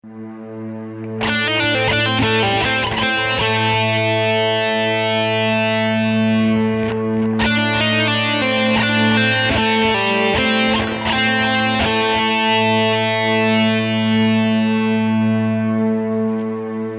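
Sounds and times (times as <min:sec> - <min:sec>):
guitar lick: 0:01.0 - 0:16.8.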